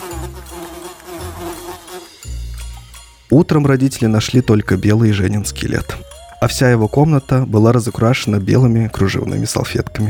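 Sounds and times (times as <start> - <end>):
flies buzzing: 0.0 - 2.2
speech: 3.3 - 10.0.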